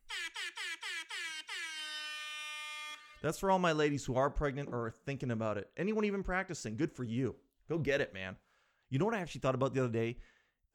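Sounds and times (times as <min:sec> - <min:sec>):
air horn blasts: 0:00.0 - 0:03.3
speech: 0:03.2 - 0:10.7.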